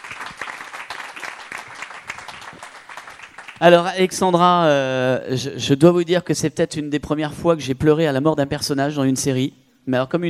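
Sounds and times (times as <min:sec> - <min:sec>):
audience applause: 0:00.0 - 0:03.6
speech: 0:03.6 - 0:10.2.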